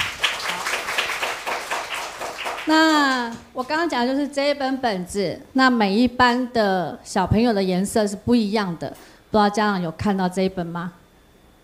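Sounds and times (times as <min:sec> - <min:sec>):
applause from parents and children at a school award ceremony: 0:00.0 - 0:03.5
speech: 0:02.7 - 0:11.0.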